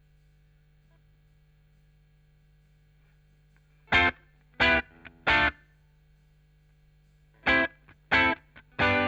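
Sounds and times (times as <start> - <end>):
guitar with chorus effect: 3.8 - 5.6, 7.4 - 9.0.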